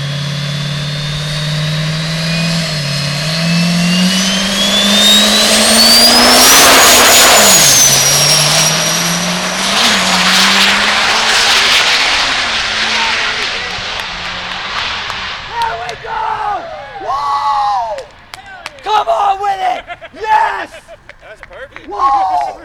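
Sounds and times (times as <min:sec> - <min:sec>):
regular-cab diesel pickup truck with LB7 engine roaring on a drag strip: 0:00.0 - 0:21.9
rising turbo whistle of a diesel pickup truck: 0:00.5 - 0:12.1
laughter: 0:18.4 - 0:22.6.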